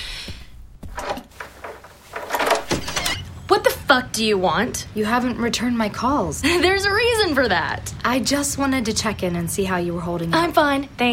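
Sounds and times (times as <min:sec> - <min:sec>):
door scraping and rattling as it swings open: 0:00.9 - 0:03.3
speech: 0:03.5 - 0:11.1.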